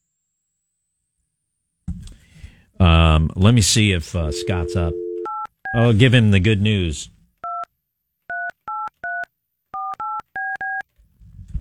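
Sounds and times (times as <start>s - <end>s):
speech: 3.2s - 5.0s, 5.7s - 7.2s
touch-tone beeps of a telephone number being dialed: 4.3s - 5.8s, 8.3s - 10.8s.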